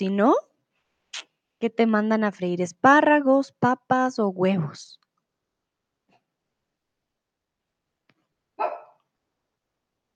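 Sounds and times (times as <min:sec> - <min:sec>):
speech: 0:00.0 - 0:00.5, 0:01.6 - 0:05.0
single short dog bark: 0:08.6 - 0:09.1.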